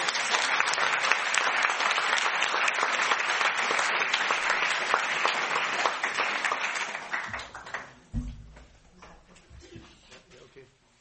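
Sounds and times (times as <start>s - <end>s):
audience applause for the performers of a stage play: 0.0s - 8.1s.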